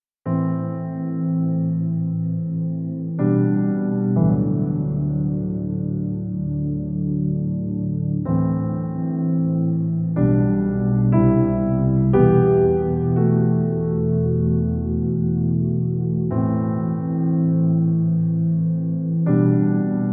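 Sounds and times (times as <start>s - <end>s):
Nord Stage 3 stage piano: 0.2s - 20.1s.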